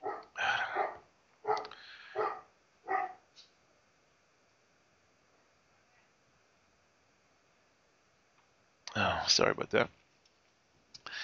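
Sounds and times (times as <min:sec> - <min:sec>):
Great Dane barking deeply and loudly: 0:00.0 - 0:03.2
speech: 0:09.4 - 0:10.0.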